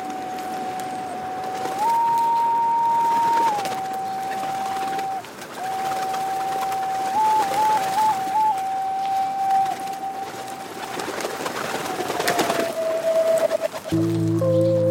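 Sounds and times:
busy outdoor noise: 0.0 - 14.8
resident pigeons cooing and burbling: 0.0 - 14.8.

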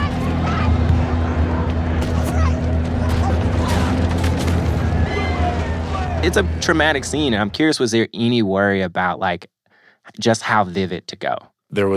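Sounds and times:
people shouting: 0.0 - 6.7
sharp loud blasts like explosions: 0.0 - 7.4
chaotic crowd commotion: 0.0 - 7.6
deep steady rumble: 0.0 - 7.7
speech: 6.3 - 11.9.

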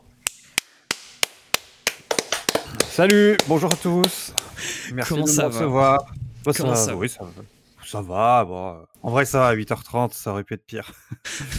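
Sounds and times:
sharp hand claps: 0.2 - 4.6
speech: 3.0 - 11.5
laughter: 10.9 - 11.5.

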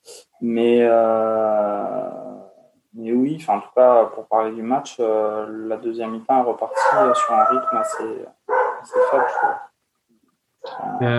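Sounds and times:
speech: 0.4 - 2.2, 2.9 - 9.7, 10.6 - 11.1
dog howling: 6.1 - 9.7.

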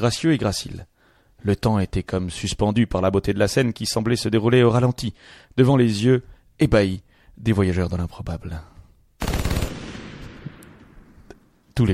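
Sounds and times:
speech: 0.0 - 9.3, 11.8 - 11.9
light machine gun burst shooting down a horse: 9.2 - 10.6.

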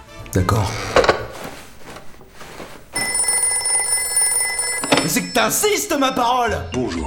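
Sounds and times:
speech: 0.3 - 1.0, 5.1 - 7.0
soft knocks and rustles: 1.0 - 5.4
telephone ringing with a bright electronic ring: 1.0 - 6.8.

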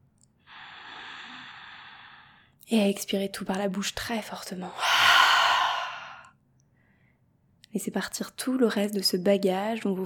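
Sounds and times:
deep breath in through the nose during a guided meditation: 0.5 - 2.5, 4.8 - 6.3
speech: 2.7 - 5.0, 7.8 - 10.0.

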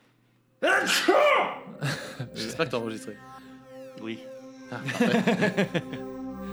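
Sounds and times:
person sneezing: 0.6 - 1.7
laughter: 1.6 - 3.1, 4.7 - 6.2
speech: 2.6 - 3.4, 4.0 - 6.2.

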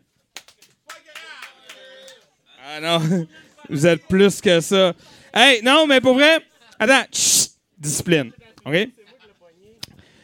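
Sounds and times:
audience clapping: 0.3 - 2.4
audience raised voices and cheering: 0.5 - 2.4
speech: 2.8 - 9.0.

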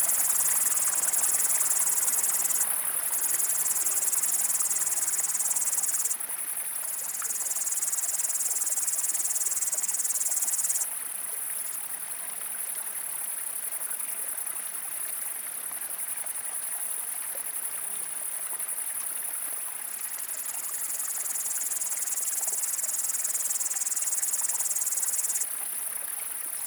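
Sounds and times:
upland green bush-cricket song in Drôme France on a windless evening: 0.0 - 6.2, 6.8 - 10.9, 20.4 - 25.5
trickling stream: 0.0 - 26.6.

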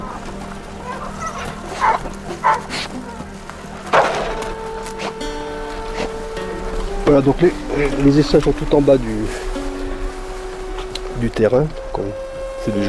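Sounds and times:
dog guarding hens' eggs from cats barking: 0.8 - 3.2
speech: 7.1 - 9.5, 11.2 - 12.8.

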